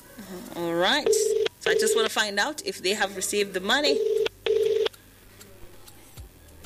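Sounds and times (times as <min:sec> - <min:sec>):
speech: 0:00.3 - 0:04.2
telephone keypad tones as a call is placed: 0:01.1 - 0:02.1, 0:03.9 - 0:04.9.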